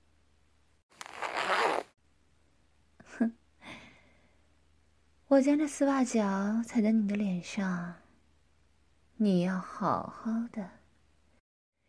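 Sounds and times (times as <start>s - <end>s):
boot zipper being pulled down: 0.9s - 1.9s
speech: 3.2s - 3.4s, 5.3s - 8.0s, 9.2s - 10.8s.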